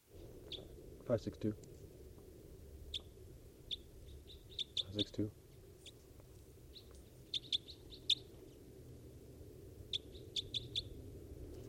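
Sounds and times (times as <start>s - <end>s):
low steady background rumble: 0.0s - 11.6s
crossbill chip calls while foraging on Engelmann spruce cones: 0.4s - 0.8s, 2.9s - 6.1s, 6.7s - 8.4s, 9.9s - 11.0s
speech: 1.1s - 1.7s, 5.0s - 5.4s.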